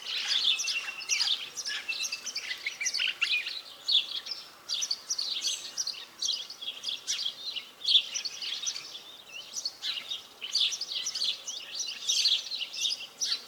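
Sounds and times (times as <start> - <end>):
birds: 0.0 - 13.4.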